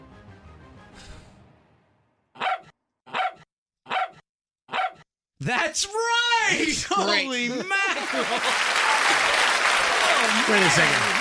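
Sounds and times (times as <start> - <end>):
dog barking: 2.4 - 5.0
speech: 5.4 - 9.3, 10.2 - 11.1
laughter: 6.4 - 11.1.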